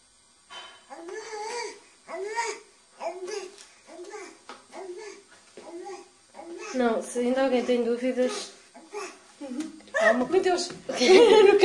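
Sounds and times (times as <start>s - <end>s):
baby babbling: 0.9s - 6.9s, 7.6s - 9.2s
speech: 6.8s - 8.6s, 10.0s - 11.6s
laughter: 9.4s - 11.6s.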